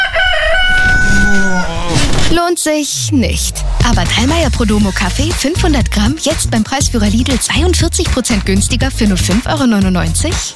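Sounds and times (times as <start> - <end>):
rooster crowing: 0.0 - 2.0
speech: 2.5 - 10.5.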